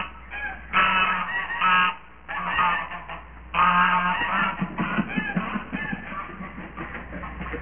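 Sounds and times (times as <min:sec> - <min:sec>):
geese: 0:00.0 - 0:07.5
laughter: 0:04.2 - 0:07.5.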